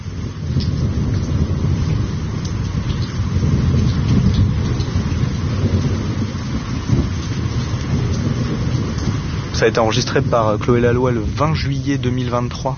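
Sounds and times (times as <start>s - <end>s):
deep rumbling low thunder: 0.0s - 12.7s
first heavy rain of the year pouring down in a thunderstorm: 0.0s - 12.7s
speech: 9.6s - 12.7s.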